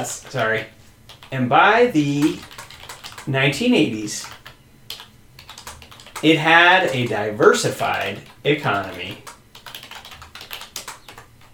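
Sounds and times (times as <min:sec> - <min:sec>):
typing on a computer keyboard during a typing test: 0:00.0 - 0:01.4, 0:02.0 - 0:11.5
speech: 0:00.0 - 0:02.5, 0:03.2 - 0:04.4, 0:06.2 - 0:09.3.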